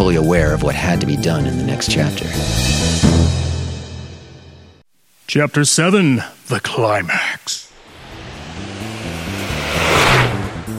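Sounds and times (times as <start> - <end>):
speech: 0.0 - 3.2, 5.3 - 7.6
car engine roaring while driven fast: 7.8 - 10.7.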